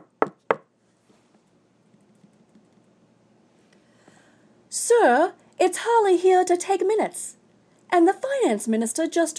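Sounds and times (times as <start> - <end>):
knocks on a door: 0.0 - 0.7
low hum: 0.0 - 9.3
speech: 4.7 - 9.3.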